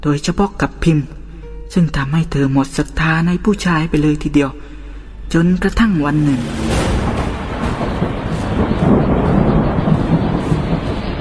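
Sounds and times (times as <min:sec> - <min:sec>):
speech: 0:00.0 - 0:04.7, 0:05.3 - 0:06.8
deep rolling thunder: 0:06.0 - 0:11.1
heavy downpour: 0:06.1 - 0:11.1.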